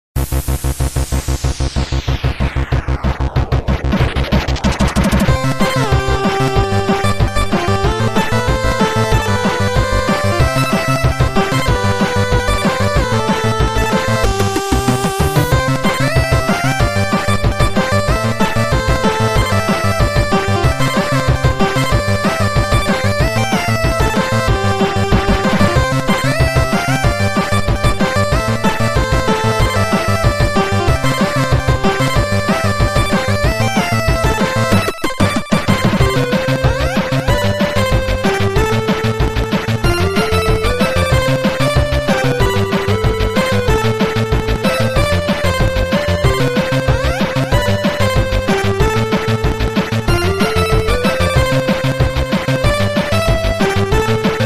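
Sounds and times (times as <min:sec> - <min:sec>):
keygen music: 0:00.3 - 0:54.4.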